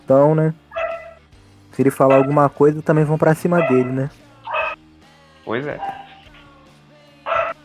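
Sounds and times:
speech: 0.1s - 0.6s, 1.8s - 4.3s, 5.5s - 6.0s
dog barking: 0.8s - 1.2s, 2.0s - 2.6s, 3.4s - 4.8s, 5.7s - 6.4s, 7.3s - 7.6s.

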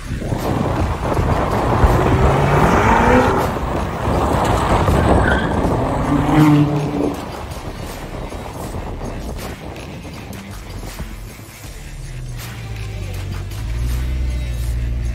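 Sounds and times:
car engine rumbling while driving through a town: 0.0s - 15.1s
road noise: 0.0s - 15.1s.

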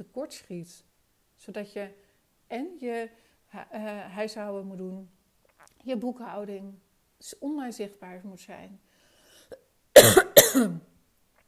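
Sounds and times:
speech: 0.0s - 5.2s, 5.8s - 8.9s, 9.5s - 10.9s
person coughing from a tickle in the throat: 9.5s - 10.8s.

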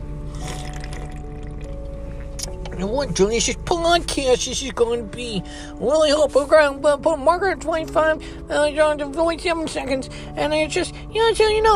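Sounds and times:
steady low hum: 0.0s - 9.0s
sharp fizz of sparkling water: 0.3s - 1.8s
someone drinking sparkling water from an aluminum can: 0.3s - 2.5s
fizzy water sloshing and trickling: 0.3s - 2.7s
speech: 2.8s - 11.7s.

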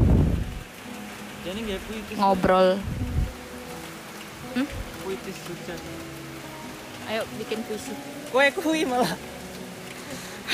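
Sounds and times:
steady rain pattering and hissing: 0.0s - 10.5s
speech: 1.5s - 3.0s, 4.5s - 6.1s, 7.1s - 9.3s.

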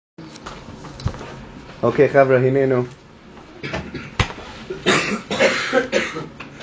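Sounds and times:
speech: 1.8s - 3.0s
person coughing: 3.6s - 6.4s.

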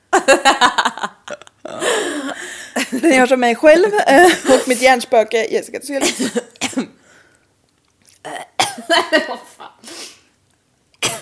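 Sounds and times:
person laughing rhythmically: 0.1s - 3.1s, 8.8s - 9.8s
speech: 0.3s - 0.8s, 3.0s - 6.5s
drawn-out throaty burp: 8.2s - 8.8s.

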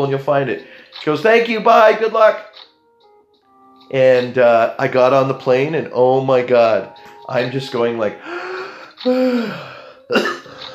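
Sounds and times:
speech: 0.0s - 2.7s, 3.9s - 10.4s
person coughing: 9.1s - 10.5s.

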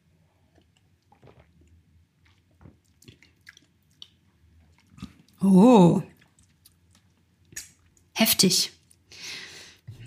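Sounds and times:
wet chewing of a creamy orange-flavoured food: 0.5s - 5.4s, 6.0s - 8.1s
speech: 5.4s - 6.1s, 8.4s - 8.8s.

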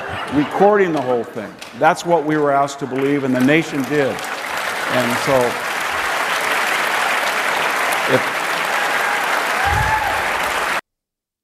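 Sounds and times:
laughter: 0.0s - 1.4s
speech: 0.3s - 4.3s, 4.9s - 5.7s, 8.1s - 8.3s
audience applause at a live talk: 2.5s - 10.8s.

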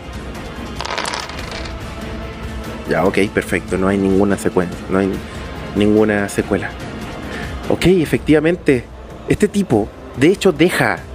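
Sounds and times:
two yellow dice rolling on a hard tabletop: 0.8s - 1.8s
speech: 2.9s - 6.9s, 7.7s - 11.1s.

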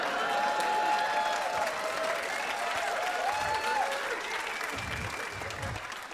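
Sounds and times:
whoops and shouts: 0.0s - 5.8s
audience at a poem recitation cheering: 0.0s - 6.1s.

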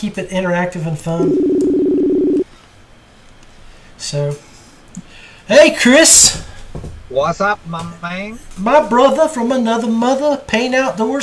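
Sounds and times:
speech: 0.0s - 1.7s, 4.0s - 4.5s, 5.5s - 11.2s
electronic telephone tone while dialing: 1.2s - 2.4s.

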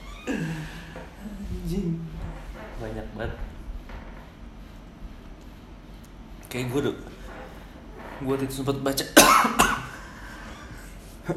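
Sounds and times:
speech: 1.7s - 2.2s, 2.8s - 3.5s, 6.5s - 7.2s, 8.2s - 9.8s
person coughing in a harsh coughing fit: 9.2s - 10.1s.

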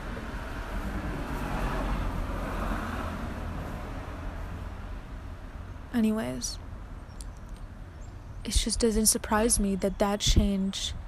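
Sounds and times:
car driving down a street with road rumble and engine drone: 0.0s - 8.4s
speech: 6.0s - 6.6s, 8.4s - 11.0s.

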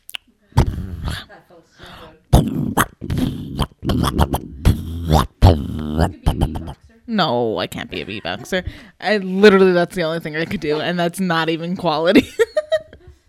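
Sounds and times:
loud nose-blowing: 0.1s - 1.3s, 2.3s - 6.8s
speech: 4.0s - 5.3s, 6.0s - 6.4s, 7.2s - 12.5s.

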